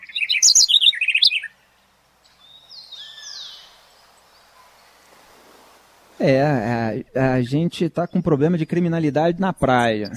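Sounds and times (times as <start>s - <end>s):
thin long whistling bird call: 0.0s - 1.5s
birds chirping and singing: 0.0s - 10.1s
speech: 6.2s - 10.1s.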